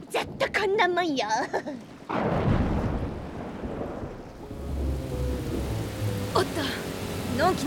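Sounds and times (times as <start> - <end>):
speech: 0.2 - 2.6, 6.4 - 7.6
sudden loud crash like thunder: 2.1 - 4.4
heavy rain in a storm on the sea: 2.1 - 7.6.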